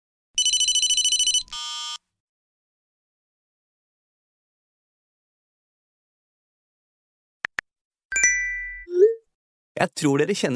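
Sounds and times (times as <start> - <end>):
bright warbling mobile phone ringtone: 0.4 - 1.4
melodic phone chime: 8.1 - 8.9
speech: 9.8 - 10.5.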